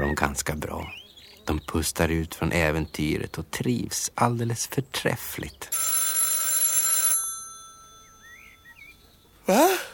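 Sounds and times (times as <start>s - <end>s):
speech: 0.1s - 6.0s, 9.5s - 9.7s
telephone ringing with a bright metallic trill: 5.7s - 8.8s.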